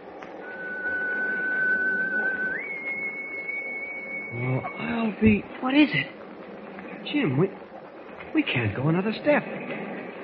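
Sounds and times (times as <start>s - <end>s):
constant low rumbling background: 0.0s - 10.2s
steady piercing whistle blowing in thick fog: 0.4s - 5.2s
speech: 4.3s - 6.2s, 7.1s - 7.6s, 8.4s - 9.8s.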